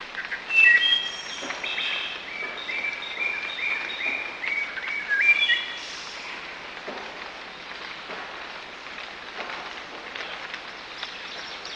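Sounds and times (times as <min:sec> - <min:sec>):
constant background hiss: 0:00.0 - 0:11.7
bird chirps and whistled notes: 0:00.5 - 0:05.8.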